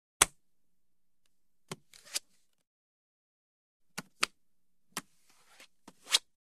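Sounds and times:
playing card flip: 1.7s - 2.4s, 5.3s - 6.3s.

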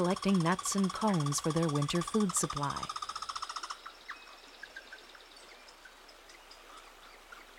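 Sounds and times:
speech: 0.0s - 3.0s
red squirrel scolding chatter with a rapid buzzy rattling trill: 0.0s - 3.8s.

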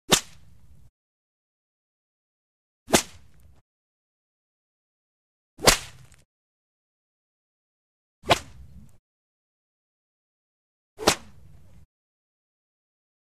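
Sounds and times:
whip swishing and cracking with reverb: 0.1s - 0.4s, 2.9s - 3.3s, 5.6s - 6.2s, 8.2s - 8.6s, 11.0s - 11.3s.

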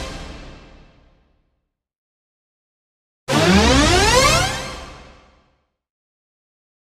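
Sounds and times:
big power-up synthesizer button music effect: 3.3s - 4.8s.

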